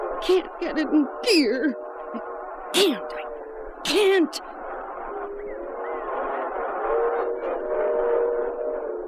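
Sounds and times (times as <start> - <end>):
speech: 0.2 - 3.2, 3.9 - 4.5
harmonic whistle-like tones of a train: 6.9 - 8.9.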